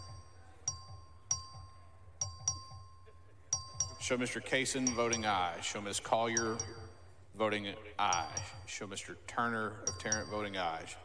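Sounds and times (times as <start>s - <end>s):
metallic bell ringing: 0.0s - 7.2s, 8.0s - 8.8s, 9.8s - 11.0s
faint steady tone: 0.0s - 11.0s
speech: 4.1s - 11.0s.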